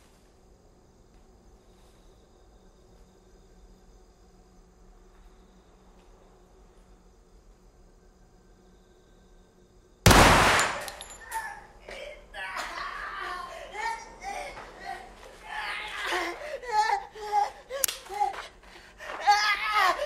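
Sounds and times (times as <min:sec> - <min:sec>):
pistol shot: 0:10.1 - 0:11.1
person crying: 0:11.2 - 0:20.0.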